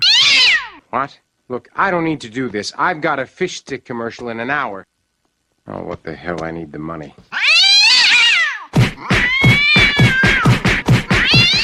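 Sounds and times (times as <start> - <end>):
cat meowing: 0.0 - 0.8, 7.3 - 10.5, 11.1 - 11.6
speech: 0.9 - 4.9, 5.6 - 7.4.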